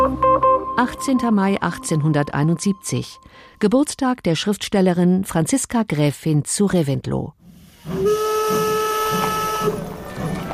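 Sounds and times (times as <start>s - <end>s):
speech: 0.8s - 8.0s
steam train arriving in Munich hissing and chuffing: 7.7s - 10.5s
steam train whistle in Munich: 7.8s - 10.3s.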